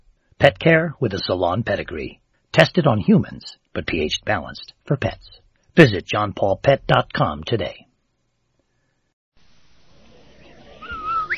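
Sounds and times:
soft hissy background: 0.0 - 11.3
speech: 0.4 - 7.8
whistle: 10.4 - 11.3.

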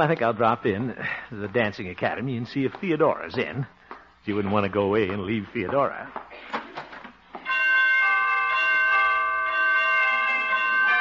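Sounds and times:
speech: 0.0 - 6.6
knocks or footsteps: 1.5 - 7.7
door chimes ringing: 7.4 - 10.9.

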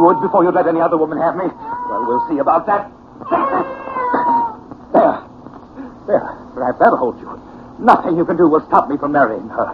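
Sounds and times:
cat yowling and screeching: 0.0 - 2.6, 3.2 - 4.6
speech: 0.0 - 3.8, 6.1 - 9.7.

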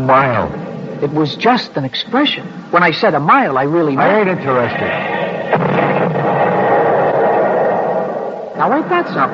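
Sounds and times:
speech: 0.0 - 5.8, 8.6 - 9.3
artillery shell explosion: 4.5 - 9.3
dense rumbling roar: 4.7 - 9.3.

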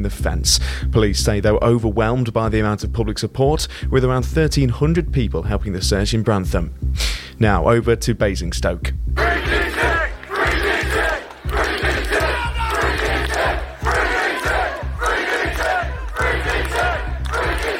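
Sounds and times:
speech: 0.0 - 9.9
demonstrators chanting outside a police centre in protest at an arrest: 9.2 - 17.7.

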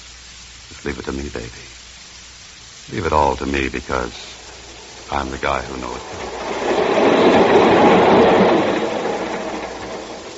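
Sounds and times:
speech: 0.8 - 1.8, 2.9 - 4.4, 5.1 - 6.6
moving train clattering on rails: 4.2 - 10.3.

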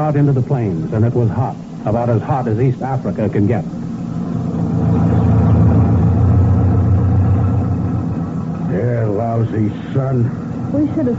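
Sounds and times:
speech: 0.0 - 3.8, 9.4 - 11.1
jeep-like motor lorry engine driving: 0.0 - 11.1.

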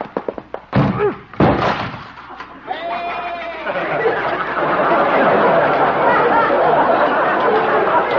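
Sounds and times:
door being smashed in: 0.7 - 2.3
laughter: 2.3 - 8.1.

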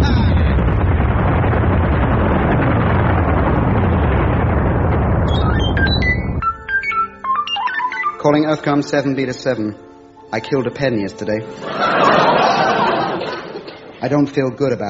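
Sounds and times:
cannon firing sound effect: 0.0 - 6.5
electronic beeps and chirps: 5.3 - 8.3
speech: 8.3 - 12.5, 14.0 - 14.8
laughter: 11.6 - 14.0.

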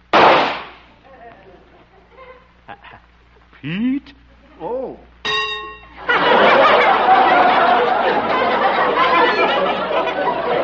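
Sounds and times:
rifle shot: 0.1 - 0.9
laughter: 1.0 - 3.1, 5.9 - 10.6
speech: 3.6 - 5.4.

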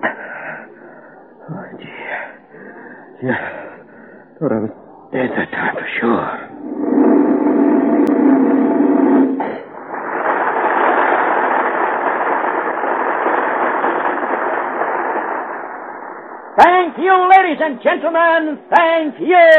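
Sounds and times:
speech: 3.2 - 3.6, 4.4 - 6.4, 17.1 - 19.5
firework roaring blast: 6.2 - 17.1.

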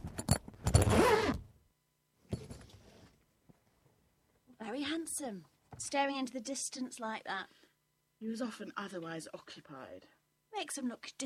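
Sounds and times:
bag zipper pulled: 0.6 - 1.4
speech: 4.8 - 7.6, 8.2 - 11.2.

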